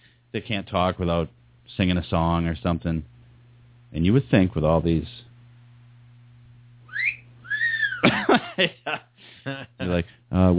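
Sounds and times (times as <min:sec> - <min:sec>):
faint low hum: 0:00.0 - 0:10.5
speech: 0:00.3 - 0:03.1, 0:03.9 - 0:05.2, 0:08.6 - 0:10.5
whistle tones: 0:06.9 - 0:08.0
laughter: 0:08.0 - 0:09.8.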